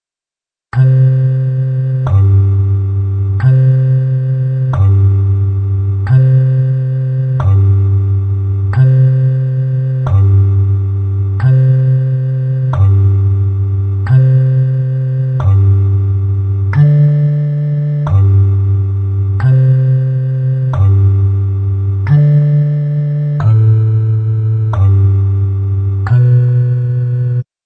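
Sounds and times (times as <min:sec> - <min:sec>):
slow walking bass jingle line: 0:00.8 - 0:27.4.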